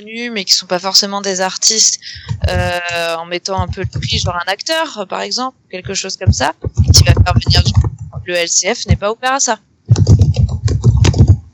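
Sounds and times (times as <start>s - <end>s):
speech: 0.0s - 10.4s
rapid typing on a computer keyboard: 2.2s - 4.5s, 5.9s - 9.0s, 9.9s - 11.5s.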